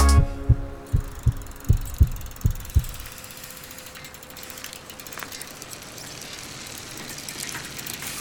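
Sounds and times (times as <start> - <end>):
heartbeat thumps: 0.1 - 3.1.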